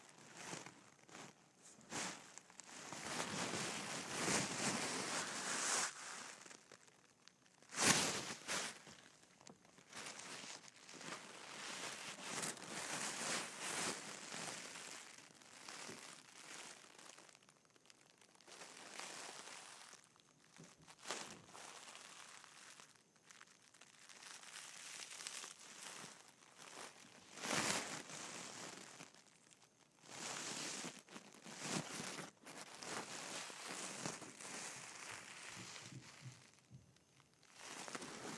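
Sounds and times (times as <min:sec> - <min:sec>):
tissue paper and gift wrap rustling and crinkling: 0:00.0 - 0:38.3.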